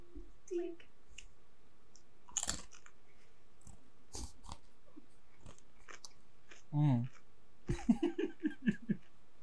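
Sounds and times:
person chewing everything bagel seasoning pretzel crisps: 0:02.2 - 0:03.0, 0:03.6 - 0:04.7, 0:05.3 - 0:07.8
laughter: 0:07.7 - 0:09.1.

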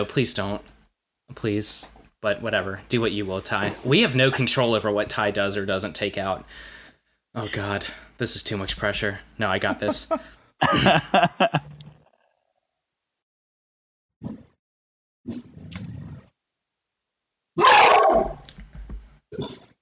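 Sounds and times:
speech: 0:00.0 - 0:00.7, 0:01.3 - 0:06.8, 0:07.4 - 0:11.7, 0:15.3 - 0:15.5
laughter: 0:09.5 - 0:11.8
dog barking: 0:17.6 - 0:18.4.

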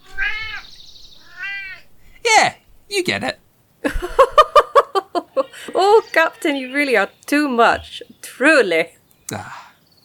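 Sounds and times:
cat meowing with a drawn-out wavering cry: 0:00.0 - 0:02.0
speech: 0:03.0 - 0:03.4, 0:06.5 - 0:09.6
laughter: 0:03.8 - 0:06.0.

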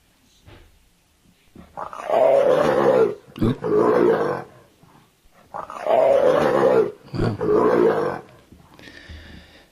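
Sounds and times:
leopard growling and roaring from an animal-sounds app: 0:01.7 - 0:04.7, 0:05.4 - 0:08.5
speech: 0:03.4 - 0:04.4.

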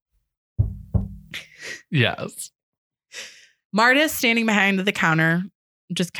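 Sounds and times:
heavy hollow knocks on a door: 0:00.6 - 0:01.4
speech: 0:01.8 - 0:06.1.

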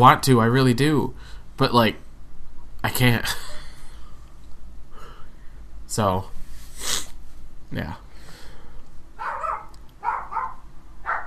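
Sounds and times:
speech: 0:00.0 - 0:02.0, 0:02.8 - 0:03.5, 0:05.9 - 0:07.0, 0:07.7 - 0:08.0
low steady hum: 0:00.0 - 0:11.2
dog barking: 0:09.2 - 0:11.2.

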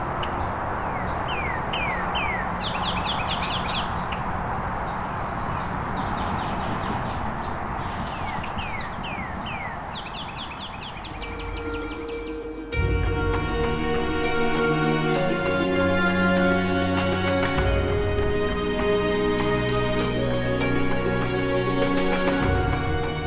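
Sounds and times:
steady rushing outdoor background: 0:00.0 - 0:23.2
northern cardinal singing rapid down-slurred whistles: 0:01.0 - 0:04.0, 0:07.8 - 0:12.3.

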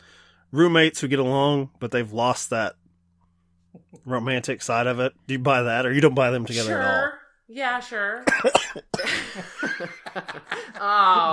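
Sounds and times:
speech: 0:00.5 - 0:02.8, 0:03.8 - 0:11.3
person coughing: 0:08.2 - 0:09.4
person laughing: 0:09.0 - 0:11.3.

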